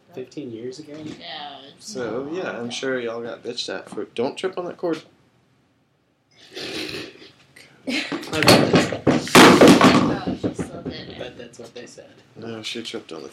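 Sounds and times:
knocks on a microphone: 8.4s - 11.3s.

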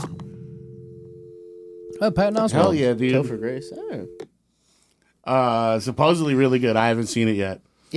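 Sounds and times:
answering machine beep after a voicemail greeting: 0.1s - 4.2s
speech: 2.0s - 4.3s, 5.2s - 7.9s.

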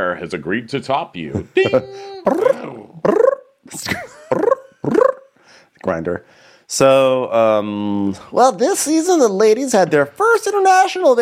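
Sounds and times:
speech: 0.0s - 3.9s, 5.9s - 11.2s
person imitating growling: 1.6s - 3.5s, 4.2s - 5.3s.

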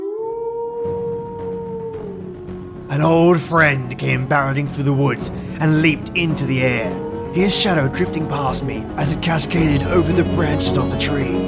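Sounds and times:
distant howl: 0.0s - 3.4s, 5.6s - 9.6s
low rumbling background: 0.5s - 11.4s
speech: 2.9s - 11.4s.

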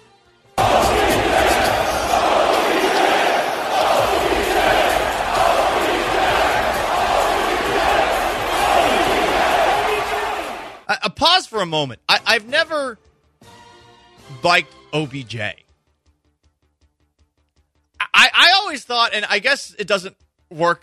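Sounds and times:
people shouting in a basketball arena crowd: 0.6s - 10.9s
basketball arena crowd cheering: 0.6s - 11.0s
speech: 11.6s - 13.1s, 14.4s - 15.6s, 18.7s - 20.8s.

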